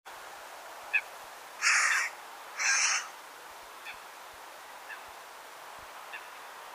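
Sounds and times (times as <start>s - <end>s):
low hiss: 0.1s - 6.7s
carrion crow cawing: 1.6s - 3.1s.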